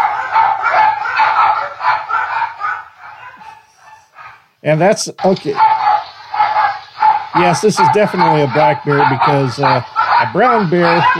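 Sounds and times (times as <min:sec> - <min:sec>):
dogs barking and yipping excitedly: 0:00.0 - 0:04.6, 0:05.2 - 0:11.1
speech: 0:04.6 - 0:05.8, 0:07.4 - 0:11.1.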